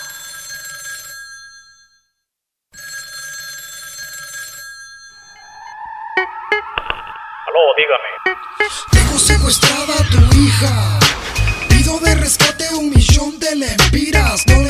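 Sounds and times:
telephone ringing with incoming call: 0.0 - 8.8
sharp electronic telephone tones: 6.2 - 8.8
speech: 7.8 - 11.2, 11.9 - 14.6.

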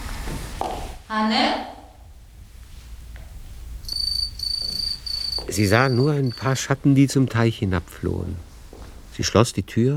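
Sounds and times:
speech: 0.6 - 1.8, 5.5 - 8.5, 9.2 - 9.9
house crickets chirping in a laundry room and by a stove: 3.8 - 6.8.

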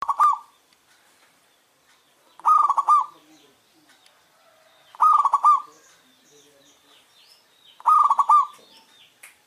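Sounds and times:
zebra dove giving a rolling trilled coo: 0.0 - 0.5, 2.4 - 3.3, 4.6 - 5.8, 7.8 - 8.8
light high chirping from other birds: 0.0 - 0.7, 1.4 - 9.3.

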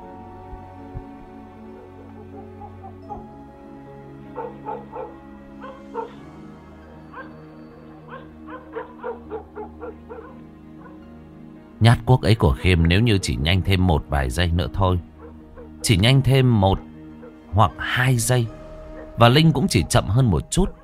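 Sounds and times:
yellow dog barking frantically at night: 4.3 - 6.2, 8.0 - 11.0, 15.1 - 15.8, 17.2 - 17.4, 20.6 - 20.8
speech: 11.8 - 15.1, 15.8 - 16.9, 17.5 - 18.6, 19.2 - 20.8.

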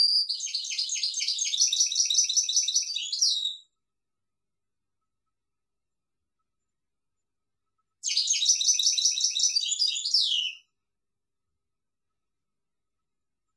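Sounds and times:
European goldfinch twittering song: 0.0 - 3.6, 8.0 - 10.6.

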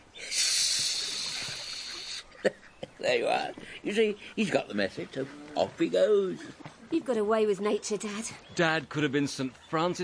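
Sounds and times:
man imitating a swan's hiss: 0.2 - 2.3
speech: 2.4 - 10.0.

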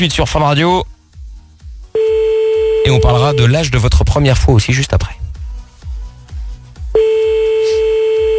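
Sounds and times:
speech: 0.0 - 0.9, 2.9 - 5.2
low rhythmic beat thumps: 0.8 - 8.3
telephone ring tone on an unanswered outgoing call: 2.0 - 3.5, 7.0 - 8.3.

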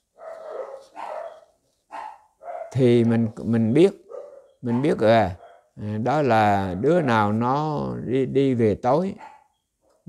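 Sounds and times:
dog barking: 0.1 - 2.9, 4.0 - 5.8, 9.2 - 10.0
speech: 2.7 - 4.0, 4.6 - 9.3.

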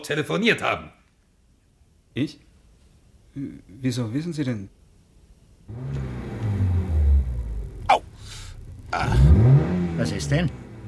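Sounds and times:
speech: 0.0 - 1.0, 2.1 - 2.5, 3.4 - 4.8, 5.7 - 6.2, 8.9 - 10.6
car engine rumbling as the car is driven: 5.7 - 10.8.

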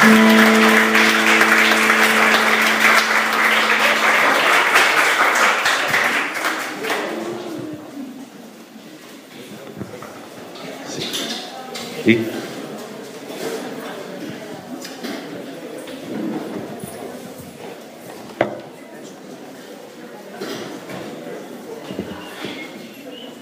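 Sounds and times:
steady held tone: 0.0 - 5.6
church congregation applauding loudly during a service: 0.0 - 7.4.

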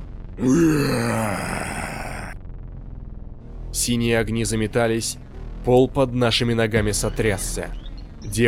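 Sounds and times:
speech: 0.4 - 1.5, 3.9 - 8.4
deep groaning roar of a fire-breathing blue demon: 0.4 - 2.4.

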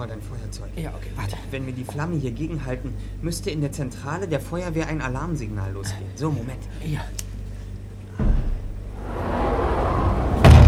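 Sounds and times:
speech: 0.0 - 7.3
door slamming shut: 8.2 - 8.8, 10.4 - 10.6
deep heavy impact: 8.2 - 10.6.

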